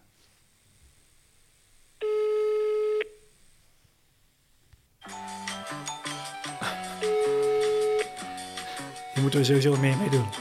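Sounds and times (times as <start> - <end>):
phone ringback tone: 2.0 - 3.2, 5.0 - 8.5
tinny hold music playing through the phone line: 5.0 - 10.4
speech: 9.2 - 10.4.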